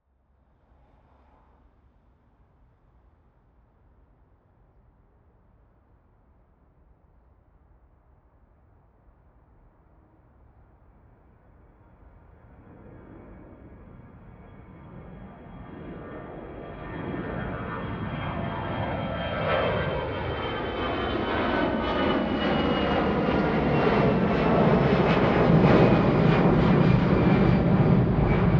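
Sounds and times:
planes taking off: 12.4 - 28.5.

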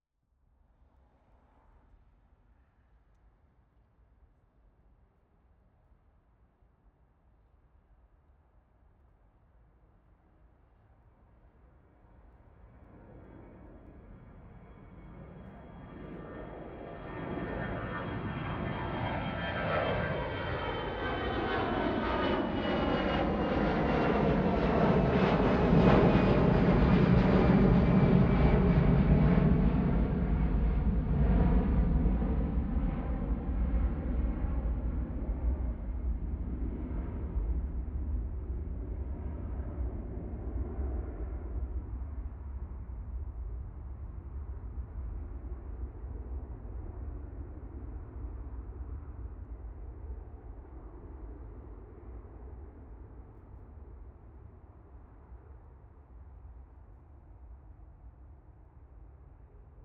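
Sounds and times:
planes taking off: 12.9 - 56.2.

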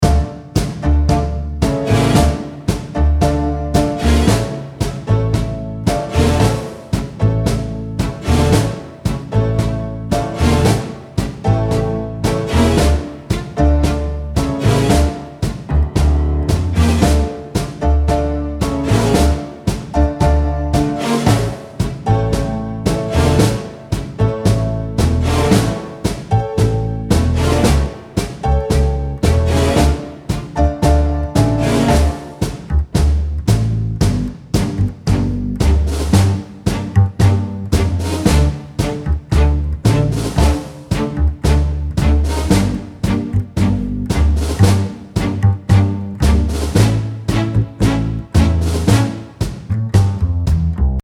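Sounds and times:
tango loop: 0.0 - 51.0.

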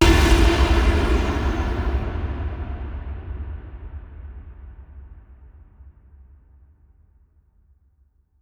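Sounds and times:
far hit: 0.0 - 2.3.

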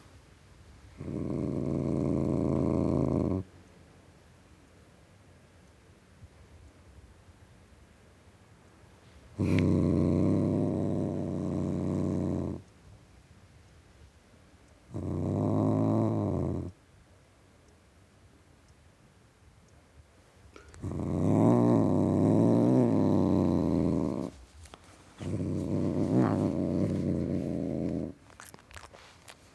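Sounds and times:
male domestic tom cat growling: 0.9 - 3.5, 9.4 - 12.7, 14.9 - 16.8, 20.6 - 24.4, 25.1 - 29.0.

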